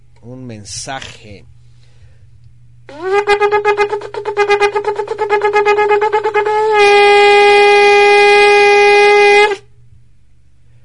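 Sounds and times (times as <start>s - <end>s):
speech: 0.2s - 1.6s, 2.9s - 8.7s
brassy horn sounding an alarm: 2.9s - 9.7s.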